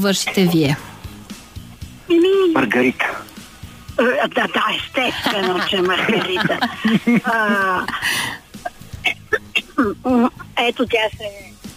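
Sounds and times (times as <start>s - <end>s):
speech: 0.0s - 0.9s, 2.1s - 3.2s, 4.0s - 8.4s, 9.8s - 11.6s
voiced laugh-like vocal sounds: 4.0s - 10.6s
woman coughing: 5.2s - 10.3s.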